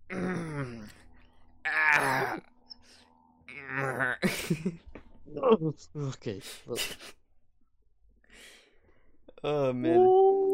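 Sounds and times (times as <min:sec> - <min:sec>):
person groaning while doing morning stretches: 0:00.1 - 0:01.0, 0:01.7 - 0:02.4, 0:03.5 - 0:04.2
speech: 0:04.5 - 0:07.2, 0:09.4 - 0:10.3.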